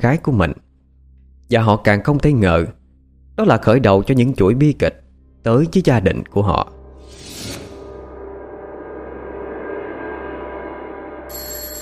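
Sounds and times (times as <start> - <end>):
speech: 0.0 - 0.6, 1.5 - 2.8, 3.4 - 7.5
phone alarm ringing: 11.3 - 11.8.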